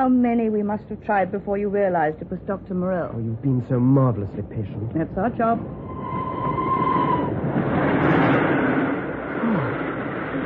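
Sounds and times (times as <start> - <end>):
speech: 0.0 - 6.3
train roaring into a tunnel: 3.0 - 10.4
thin whistle-like tone: 5.8 - 7.4.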